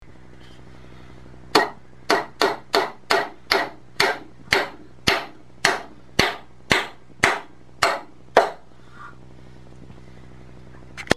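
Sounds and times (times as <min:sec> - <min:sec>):
hammering: 0:01.6 - 0:08.7.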